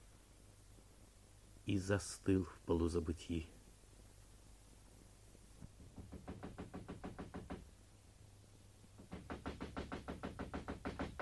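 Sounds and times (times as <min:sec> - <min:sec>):
speech: 0:01.7 - 0:03.6
rapid insistent knocking on a door: 0:05.6 - 0:07.7, 0:09.0 - 0:11.2.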